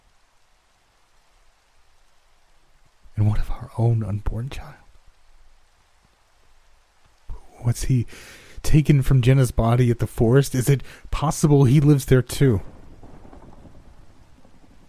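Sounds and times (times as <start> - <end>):
steady rain falling: 0.0 - 14.8
speech: 3.2 - 4.8, 7.6 - 12.7.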